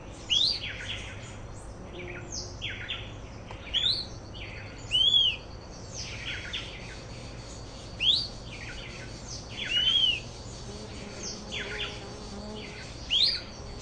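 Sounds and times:
faint bird chirps: 0.1 - 13.8
fuscous flycatcher Cnemotriccus fuscatus fuscatior singing: 3.7 - 13.8.

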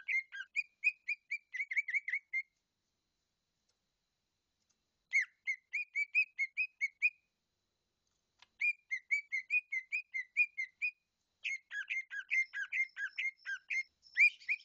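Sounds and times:
leafbird whistled song: 0.0 - 2.6, 5.1 - 7.3, 8.6 - 14.6.

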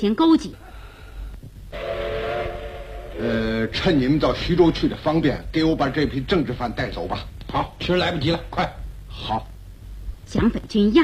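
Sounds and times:
speech: 0.0 - 0.6, 3.2 - 9.5, 10.3 - 11.0
steam train whistle at a station beside an armoured train: 1.7 - 4.4.

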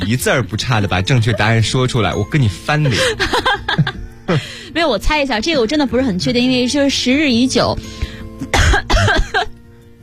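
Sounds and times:
speech: 0.1 - 3.5, 4.3 - 8.5
laughter: 1.0 - 1.9, 2.6 - 4.4
person coughing: 8.4 - 9.5.

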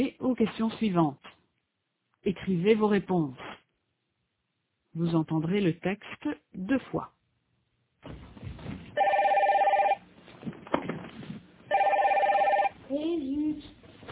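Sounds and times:
speech: 0.0 - 1.3, 2.2 - 3.6, 5.0 - 7.2
telephone ringing with a warbling electronic bell tone: 9.0 - 10.0, 11.7 - 12.8.

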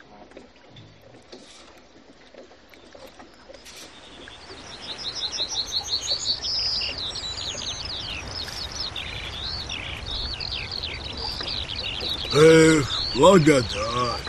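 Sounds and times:
many birds chirping and singing: 3.6 - 14.2
speech: 12.4 - 13.9.

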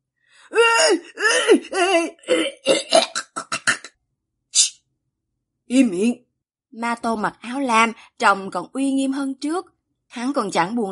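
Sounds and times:
voice performer acting violent coughing for a narrated story: 0.8 - 3.9
speech: 0.9 - 2.8, 5.7 - 10.9.

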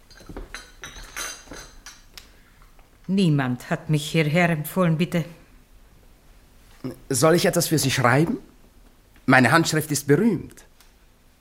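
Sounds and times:
glass and crockery clinking as glasses and cups are cleared away: 0.0 - 2.1
speech: 3.1 - 5.4, 7.1 - 8.5, 9.3 - 10.7.

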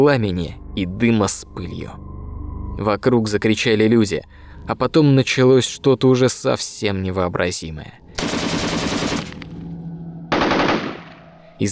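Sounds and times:
speech: 0.0 - 2.1, 2.8 - 8.7
distant automatic gunfire: 8.2 - 9.4, 10.3 - 11.3.

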